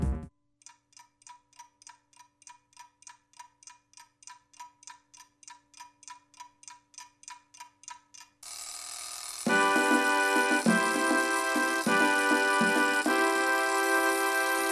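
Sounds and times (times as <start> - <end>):
clock ticking: 0.6 - 14.6
alarm clock ringing with a harsh metallic tone: 8.5 - 14.6.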